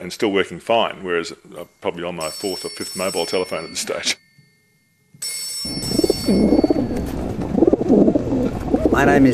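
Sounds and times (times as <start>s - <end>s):
speech: 0.0s - 4.2s, 5.2s - 6.7s, 9.0s - 9.3s
flock of racing pigeons cooing: 5.9s - 9.3s.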